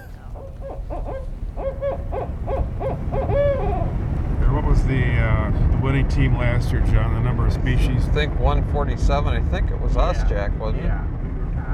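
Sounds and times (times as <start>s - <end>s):
barred owl hooting: 0.0s - 4.0s
steady low outdoor rumble: 0.0s - 11.7s
speech: 6.1s - 11.1s.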